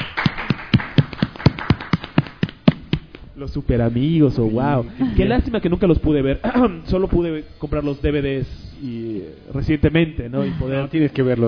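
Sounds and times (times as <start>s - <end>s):
single person's hands clapping in an even rhythm: 0.0s - 3.3s
speech: 3.4s - 11.4s.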